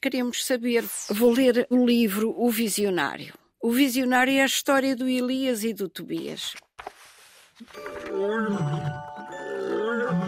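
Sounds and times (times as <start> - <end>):
speech: 0.0 - 7.0, 7.6 - 9.1
distant lioness roaring: 8.1 - 10.2.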